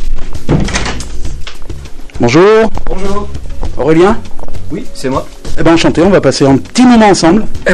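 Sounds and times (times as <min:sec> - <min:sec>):
cobbler's shop door being pushed open: 0:00.4 - 0:01.2
cobbler's shop door frame rattling: 0:00.4 - 0:01.3
speech: 0:02.2 - 0:07.7.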